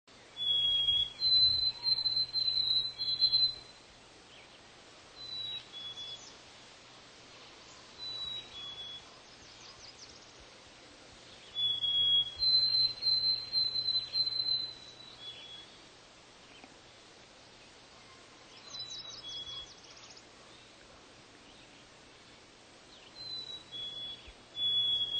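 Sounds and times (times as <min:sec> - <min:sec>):
white-throated sparrow singing: 0:00.1 - 0:04.6, 0:05.2 - 0:06.4, 0:07.4 - 0:10.5, 0:11.3 - 0:16.7, 0:18.5 - 0:20.8, 0:22.9 - 0:25.1.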